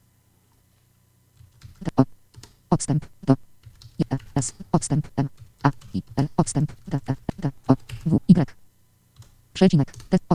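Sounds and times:
keyboard keystrokes typing a short email message: 1.4s - 2.6s, 3.6s - 4.6s, 5.4s - 8.2s, 9.2s - 10.2s
speech: 2.7s - 7.2s, 9.6s - 10.0s.

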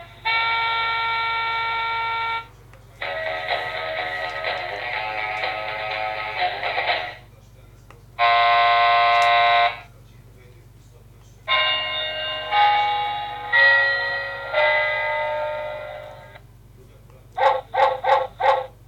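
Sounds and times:
alarm clock steady harmonic buzz: 0.0s - 7.2s, 8.2s - 9.8s, 11.5s - 16.4s, 17.4s - 18.8s
alarm clock ringing chime-like tones: 11.5s - 16.4s.

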